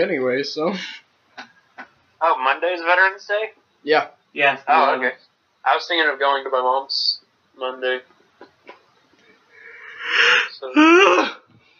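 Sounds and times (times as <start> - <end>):
speech: 0.0 - 1.5, 2.2 - 8.1, 10.0 - 11.4
breathy rising inhale before a sneeze: 9.5 - 10.6.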